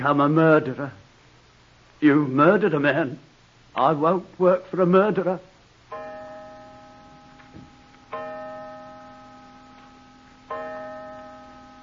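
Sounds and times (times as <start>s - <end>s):
speech: 0.0s - 1.0s, 2.0s - 5.5s
clock striking five o'clock: 5.9s - 11.8s.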